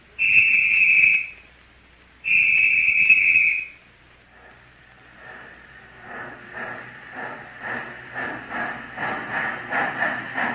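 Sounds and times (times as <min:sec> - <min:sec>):
approaching train rhythmic chugging clatter: 0:00.0 - 0:01.4, 0:02.2 - 0:10.5
long loud train whistle blasts: 0:00.2 - 0:01.4, 0:02.2 - 0:03.8.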